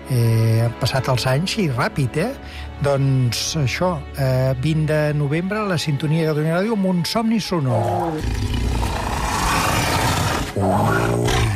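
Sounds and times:
speech: 0:00.1 - 0:09.0, 0:10.6 - 0:11.5
tiger roaring: 0:07.8 - 0:11.5.

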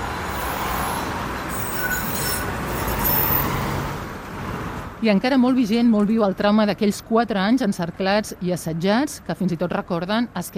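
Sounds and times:
tram passing through city streets of Sarajevo at speed: 0:00.0 - 0:05.9
urban traffic noise in Sarajevo: 0:00.0 - 0:10.5
faint metallic squeal of tram: 0:00.4 - 0:03.5
speech: 0:05.0 - 0:10.5.

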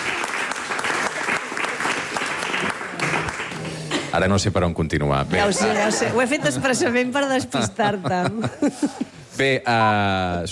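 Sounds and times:
roomful of people clapping: 0:00.0 - 0:04.2
speech: 0:04.2 - 0:10.5
laughter: 0:05.5 - 0:09.3.

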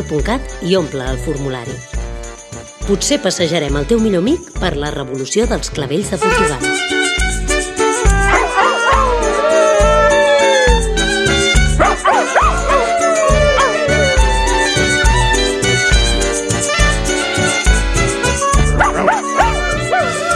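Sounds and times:
speech: 0:00.0 - 0:01.9, 0:02.9 - 0:06.9
loud music with a steady beat: 0:01.8 - 0:02.9, 0:06.4 - 0:20.3
dog yipping, barking and whining: 0:08.1 - 0:15.4, 0:18.6 - 0:20.3.

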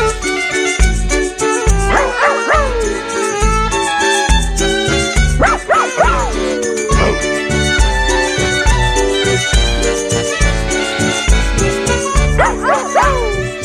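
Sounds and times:
steady dense musical background: 0:00.0 - 0:13.6
Basset Hound barking and baying: 0:01.8 - 0:03.3, 0:05.3 - 0:07.4, 0:12.2 - 0:13.4.

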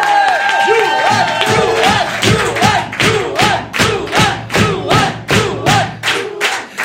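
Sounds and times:
many voices whooping and cheering: 0:00.0 - 0:02.7
loud crowd clapping in a steady rhythmic beat: 0:00.0 - 0:06.8.

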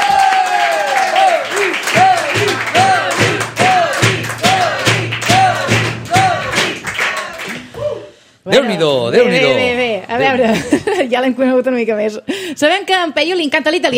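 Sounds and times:
audience applause welcoming a guest: 0:00.0 - 0:07.8
speech: 0:08.5 - 0:13.9.

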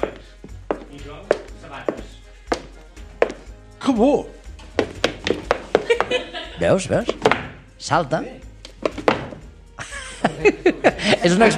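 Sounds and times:
foley footsteps with hard-soled special shoes on a hard surface: 0:00.0 - 0:03.6, 0:04.5 - 0:07.7, 0:08.6 - 0:09.6
speech: 0:00.9 - 0:02.2, 0:03.9 - 0:04.4, 0:06.6 - 0:08.5, 0:10.4 - 0:11.5
laughter: 0:05.8 - 0:06.8, 0:09.8 - 0:11.5.

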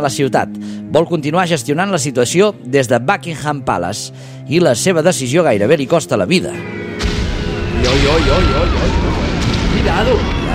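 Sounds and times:
speech: 0:00.0 - 0:06.8, 0:07.8 - 0:09.2, 0:09.8 - 0:10.4
loud bomb blasts: 0:07.0 - 0:10.5.

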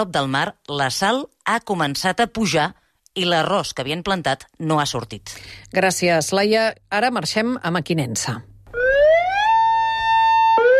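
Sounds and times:
speech: 0:00.0 - 0:08.5
emergency warning siren of a river dam: 0:08.7 - 0:10.7.

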